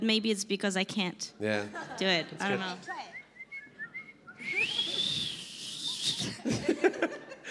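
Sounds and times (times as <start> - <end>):
speech: 0.0 - 3.1
person trying to whistle with faint chirpy tones: 3.1 - 6.4
person laughing: 5.9 - 7.5.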